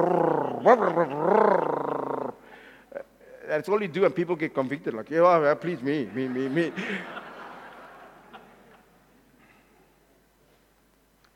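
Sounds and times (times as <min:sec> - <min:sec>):
speech: 0:00.0 - 0:01.6, 0:03.5 - 0:07.2
laughter: 0:00.0 - 0:02.3, 0:05.6 - 0:09.0
person imitating a car with a broken silencer: 0:00.0 - 0:03.1.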